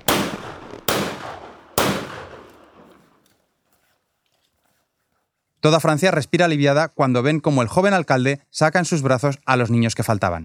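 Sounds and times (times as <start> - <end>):
gunshots with short echo: 0.0 - 3.2
speech: 5.6 - 10.4.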